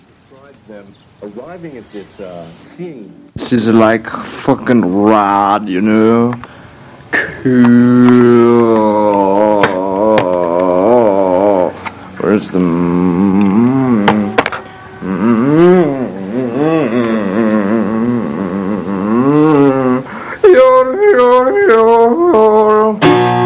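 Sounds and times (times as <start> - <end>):
speech: 0.4 - 6.5, 7.4 - 9.2, 12.4 - 14.1
quiet murmured vocal in lo-fi home recording: 7.1 - 23.0
loud voice singing long wavering sustained notes in lo-fi home recording: 7.4 - 23.3.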